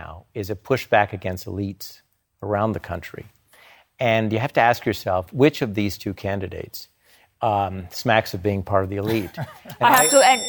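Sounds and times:
speech: 0.4s - 3.4s, 4.0s - 10.4s
timer bell ringing: 9.8s - 10.4s.

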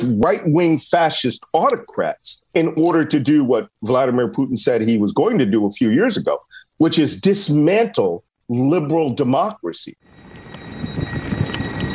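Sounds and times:
speech: 0.1s - 10.2s
faint high electrical whine: 10.0s - 11.9s
low rumble in a rail station: 10.1s - 11.9s.

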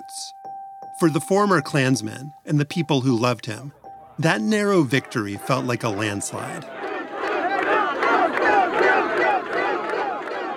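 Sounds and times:
speech: 1.0s - 6.8s
large crowd cheering and shouting at an election night victory party: 4.1s - 10.5s.

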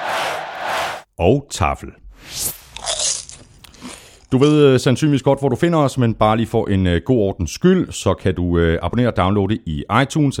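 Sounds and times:
speech: 1.2s - 2.6s, 4.3s - 10.3s
popcorn being chewed: 2.7s - 4.4s.

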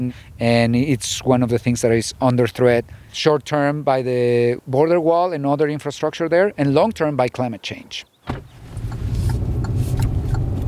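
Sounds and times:
speech: 0.0s - 8.5s
car engine droning from inside the vehicle: 8.3s - 10.6s.

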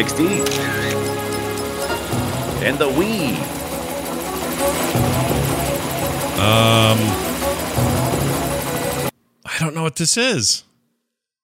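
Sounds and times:
speech: 0.0s - 0.9s, 2.6s - 3.6s, 6.4s - 7.9s, 9.6s - 10.7s
video game helicopter rotor drone with engine hum: 0.0s - 9.1s.

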